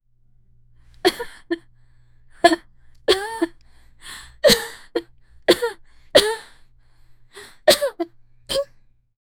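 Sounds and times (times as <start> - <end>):
15 year old girl coughing: 1.0 - 1.6, 2.4 - 3.5, 4.4 - 6.5, 7.5 - 8.7.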